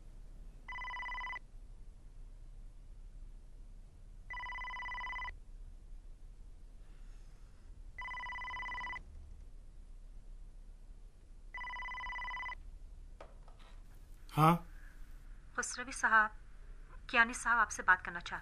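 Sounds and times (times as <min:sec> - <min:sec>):
low hum: 0:00.0 - 0:18.4
telephone ringing as a call is dialed: 0:00.7 - 0:01.4, 0:04.3 - 0:05.3, 0:08.0 - 0:09.0, 0:11.5 - 0:12.6
speech: 0:14.4 - 0:14.7, 0:15.6 - 0:16.4, 0:17.1 - 0:18.4.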